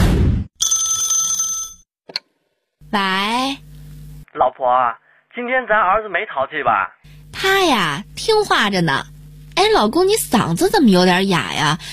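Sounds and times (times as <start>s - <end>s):
telephone ringing with an incoming call from an unknown number: 0.6s - 1.8s
speech: 2.9s - 3.7s, 4.4s - 11.9s.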